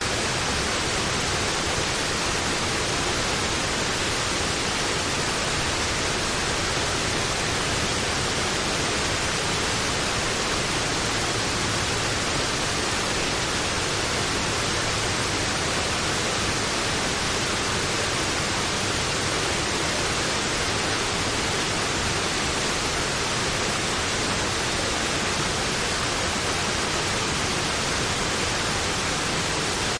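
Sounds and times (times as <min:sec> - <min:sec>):
distant waterfall close to a creek: 0:00.0 - 0:29.9.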